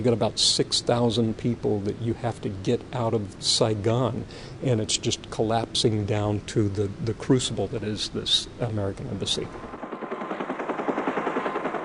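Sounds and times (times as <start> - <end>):
speech: 0.0 - 9.7
helicopter rotor blades whirling during a wartime evacuation: 9.2 - 11.8.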